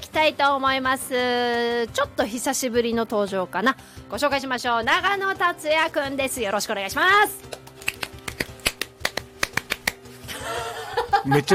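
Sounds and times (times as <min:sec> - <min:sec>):
speech: 0:00.2 - 0:07.6, 0:11.2 - 0:11.5
fast rhythmic hand clapping: 0:07.5 - 0:10.1
laughter: 0:10.3 - 0:11.5.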